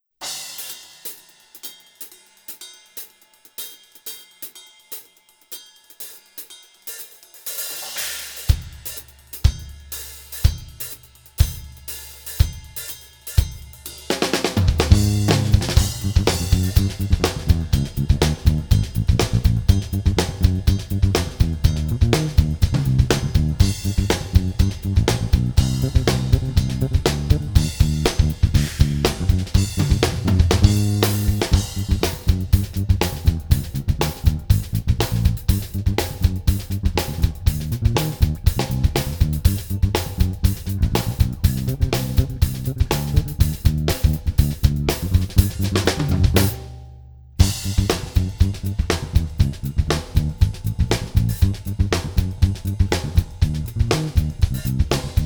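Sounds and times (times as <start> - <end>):
drums: 0.0 - 55.2
bass line: 14.7 - 46.7, 47.4 - 55.2.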